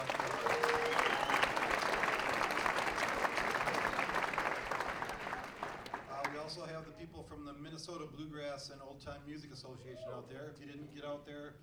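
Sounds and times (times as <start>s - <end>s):
audience applause at a bluegrass and old-time music show: 0.0s - 6.5s
speech: 7.4s - 11.6s.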